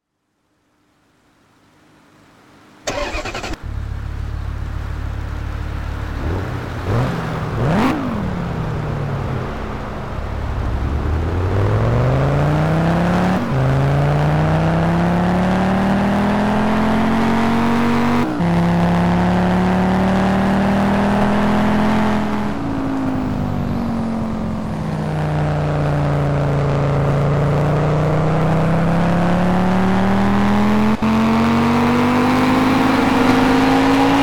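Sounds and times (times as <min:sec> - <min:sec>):
Ford Focus RS engine: 0:02.4 - 0:34.2.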